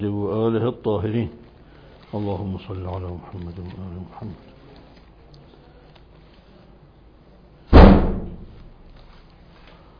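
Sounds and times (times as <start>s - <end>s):
speech: 0.0s - 1.4s, 2.1s - 4.5s
door swinging shut with a slam: 7.7s - 8.6s.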